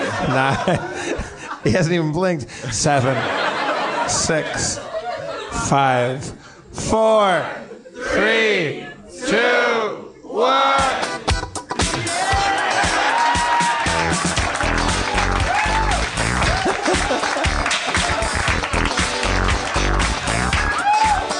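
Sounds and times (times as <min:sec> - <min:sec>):
laughter: 0:00.0 - 0:01.7, 0:02.8 - 0:06.0, 0:16.4 - 0:18.7
speech: 0:00.2 - 0:03.5, 0:04.1 - 0:04.9, 0:05.5 - 0:11.0
large crowd applauding: 0:12.0 - 0:21.3.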